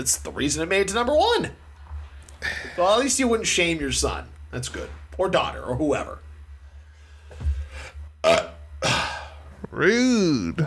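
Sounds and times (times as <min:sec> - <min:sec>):
speech: 0:00.0 - 0:01.6, 0:02.4 - 0:06.2, 0:08.2 - 0:08.5, 0:09.8 - 0:10.6
low guttural burp: 0:08.2 - 0:09.4.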